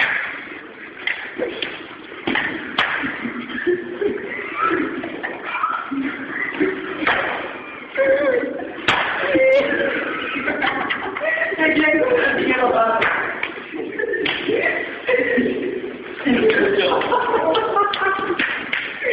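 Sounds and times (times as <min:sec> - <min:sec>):
hard slaps being practiced: 0:00.0 - 0:03.5, 0:07.0 - 0:07.6, 0:08.8 - 0:09.4, 0:13.0 - 0:13.6, 0:14.2 - 0:14.6, 0:16.5 - 0:19.0
crowd noise: 0:00.0 - 0:19.1
laughter: 0:03.0 - 0:12.7, 0:13.4 - 0:19.1
murmuring voices: 0:03.2 - 0:19.1.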